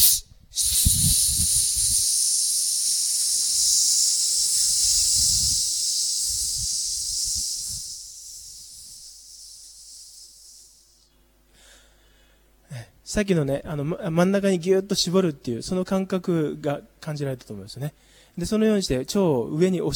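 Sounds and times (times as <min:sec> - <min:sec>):
forceful hissing exhale in a breathing exercise for the voice: 0:00.0 - 0:11.9
person inhaling in a breathing exercise for the voice: 0:00.0 - 0:12.5, 0:18.0 - 0:18.4
speech: 0:13.2 - 0:19.9.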